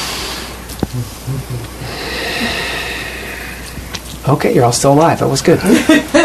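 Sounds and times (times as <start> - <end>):
low murmurs: 0.5 - 4.2
speech: 0.9 - 2.6, 4.2 - 6.2
room of people taking a long deep breath together: 1.8 - 4.1.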